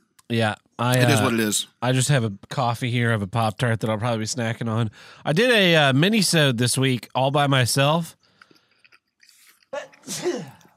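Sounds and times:
speech: 0.3s - 8.2s, 9.7s - 10.5s
person sneezing: 1.0s - 1.5s, 9.8s - 10.7s.

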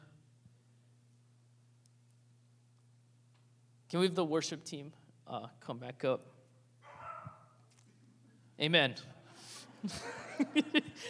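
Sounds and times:
steady low hum: 0.0s - 11.0s
speech: 3.9s - 6.4s, 8.6s - 11.0s
dog bark during a worship service: 6.8s - 7.6s
laughter: 9.3s - 11.0s.

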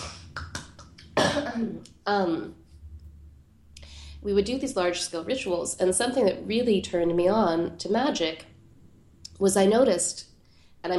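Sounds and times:
person coughing: 1.2s - 1.7s
speech: 1.4s - 2.6s, 4.2s - 8.5s, 9.4s - 10.9s.

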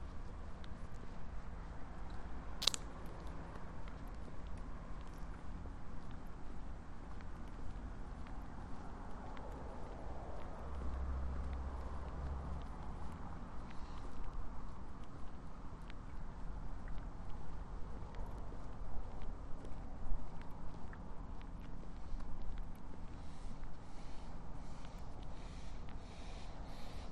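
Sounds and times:
steady low rumble of city traffic: 0.0s - 27.1s
sharp click: 2.6s - 2.9s
short crunchy ticks: 2.6s - 3.3s.

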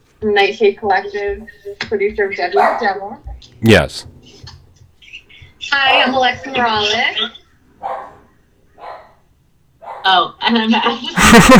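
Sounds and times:
speech: 0.2s - 4.4s, 5.7s - 8.0s, 10.0s - 11.5s
dog barking: 2.5s - 3.3s, 5.8s - 6.4s, 7.8s - 10.3s
laughter: 10.9s - 11.5s.

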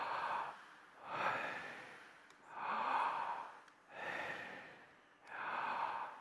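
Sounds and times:
audience breathing in together: 0.0s - 6.1s.

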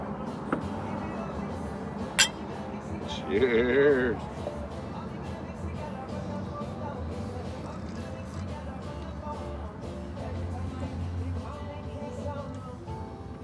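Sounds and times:
murmur of people talking: 0.0s - 13.2s
glasses clinking in a toast: 2.2s - 2.4s.

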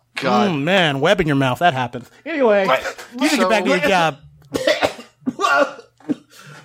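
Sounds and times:
speech: 0.2s - 4.7s, 5.5s - 5.8s
person imitating hacking coughs: 4.5s - 6.6s.

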